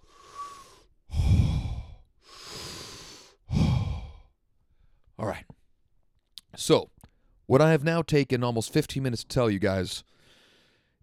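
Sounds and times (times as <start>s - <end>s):
heavy deliberate breathing to calm down: 0.0s - 5.0s
speech: 5.2s - 5.6s, 6.6s - 6.9s, 7.5s - 10.2s.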